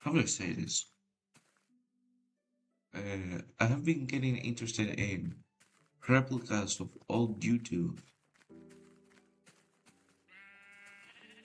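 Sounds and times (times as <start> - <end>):
speech: 0.1 - 1.0, 3.0 - 8.2
sheep bleating: 10.3 - 11.4.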